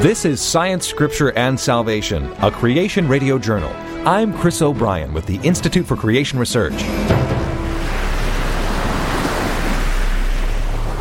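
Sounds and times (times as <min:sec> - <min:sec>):
speech: 0:00.0 - 0:07.3
heavy rain pouring down: 0:06.9 - 0:10.9.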